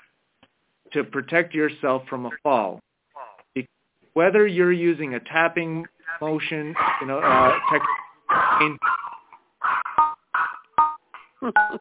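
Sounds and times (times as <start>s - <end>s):
speech: 0.9s - 2.9s, 3.6s - 8.0s, 8.6s - 8.9s, 11.4s - 11.7s
dog whimpering and barking: 6.8s - 10.6s.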